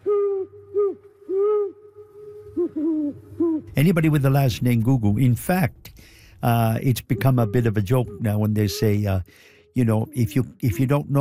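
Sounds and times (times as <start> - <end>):
owl hooting: 0.0 - 4.1, 6.4 - 11.1
speech: 2.8 - 11.1.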